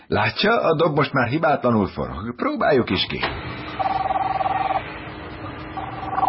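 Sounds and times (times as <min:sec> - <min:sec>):
speech: 0:00.1 - 0:03.5
mobile phone ringing with a warbling electronic trill: 0:03.8 - 0:04.8, 0:05.8 - 0:06.2.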